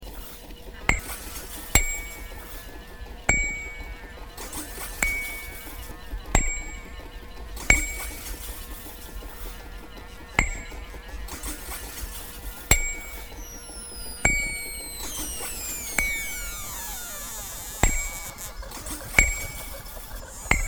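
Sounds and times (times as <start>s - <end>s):
funny machine: 0.7s - 20.6s.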